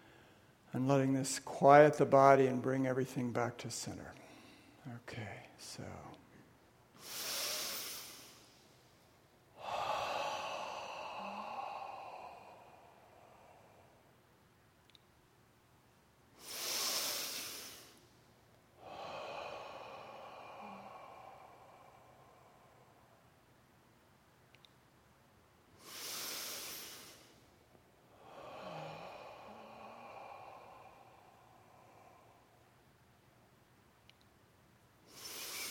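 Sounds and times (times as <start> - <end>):
speech: 0.7 - 4.2, 4.9 - 6.2
slow audible breathing during meditation: 7.0 - 14.3, 16.4 - 23.4, 25.7 - 33.0, 35.0 - 35.6.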